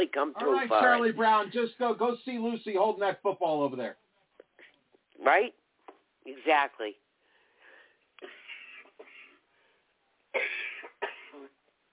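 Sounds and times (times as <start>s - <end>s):
speech: 0.0s - 4.0s, 5.2s - 5.6s, 6.3s - 7.0s, 8.2s - 8.4s, 10.3s - 10.6s
person coughing: 8.2s - 9.4s, 10.4s - 11.5s
person clearing throat: 10.4s - 11.6s.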